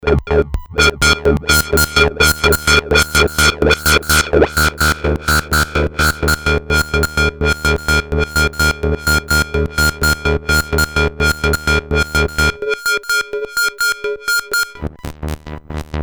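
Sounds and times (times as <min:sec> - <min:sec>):
repeating synthesizer with formant sound: 0:00.6 - 0:14.9.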